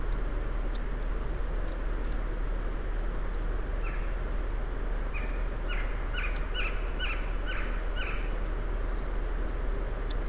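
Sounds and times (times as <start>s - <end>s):
low background rumble: 0.0s - 10.2s
western screech owl giving clipped hoots: 3.8s - 4.2s, 5.1s - 8.4s.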